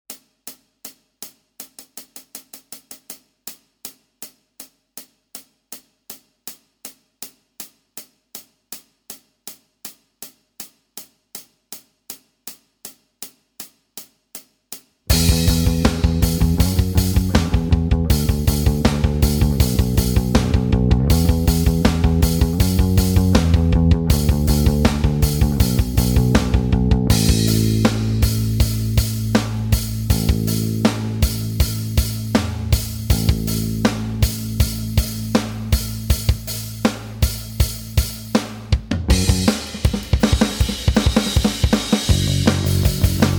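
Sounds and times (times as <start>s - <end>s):
rock backing music: 15.1s - 43.3s.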